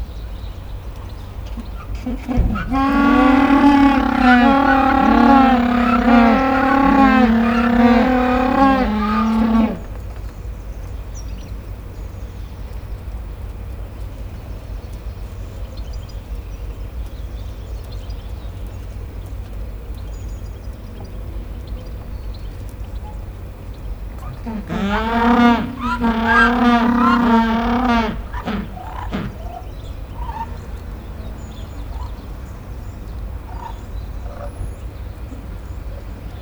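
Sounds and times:
Humboldt penguin at Nyíregyháza zoo: 0:01.4 - 0:10.0, 0:24.2 - 0:32.4.

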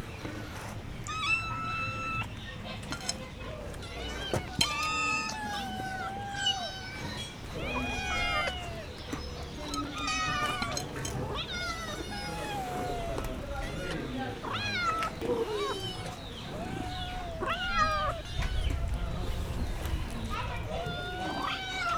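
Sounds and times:
cat eating in a farmyard: 0:00.2 - 0:21.9
cat meowing in a farmyard: 0:01.1 - 0:02.3, 0:03.7 - 0:19.4, 0:20.3 - 0:21.9
cat purring in a farmyard: 0:07.2 - 0:21.9.

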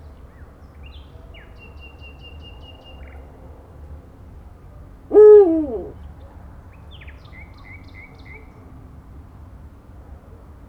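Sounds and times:
Little owl hooting at a zoo in Jászberény, Hungary: 0:05.1 - 0:05.9.

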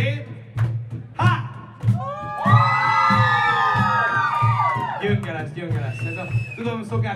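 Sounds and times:
thumping beat: 0:00.0 - 0:07.1
big crowd screaming together on a count: 0:01.9 - 0:05.2
speech: 0:05.6 - 0:07.1.

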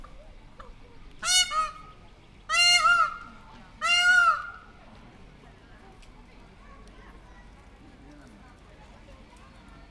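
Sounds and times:
peacock at Pécs zoo: 0:01.2 - 0:04.8.

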